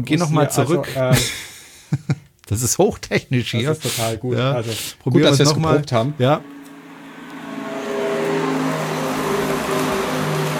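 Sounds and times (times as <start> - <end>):
speech: 0.0 - 6.6
synthetic pedestrian warning sound of a Renault Zoe electric car: 5.3 - 10.5.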